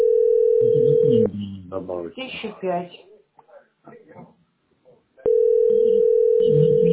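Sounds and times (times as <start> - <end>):
steady telephone dial tone before dialing: 0.0 - 1.1, 5.3 - 6.9
woman talking: 2.2 - 3.0.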